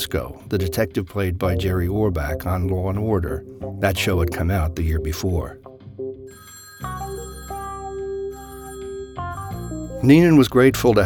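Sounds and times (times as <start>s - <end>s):
speech: 0.0s - 5.6s, 10.0s - 11.0s
several telephones ringing with electronic trills: 6.3s - 11.0s.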